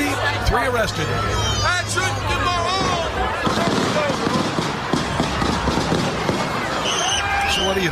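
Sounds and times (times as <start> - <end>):
chatter: 0.0 - 7.8
noisy commotion: 0.0 - 7.8
speech: 0.5 - 2.7, 7.6 - 7.8
rapid continuous burst of gunfire: 3.4 - 6.6.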